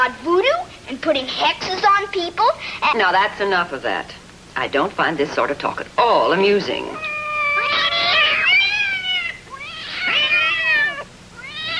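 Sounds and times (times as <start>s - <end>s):
speech: 0.0s - 7.1s
cats caterwauling with wailing yowls: 7.0s - 11.7s.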